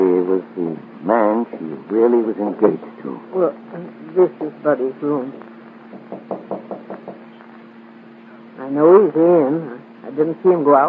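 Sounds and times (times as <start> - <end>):
speech: 1.9 - 6.5, 8.7 - 10.8
knocking on a wooden room door: 5.9 - 7.4.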